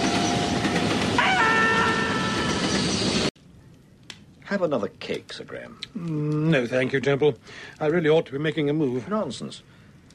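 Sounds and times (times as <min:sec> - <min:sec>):
approaching train rumbling along railway tracks: 0:00.0 - 0:03.3
speech: 0:04.5 - 0:09.7.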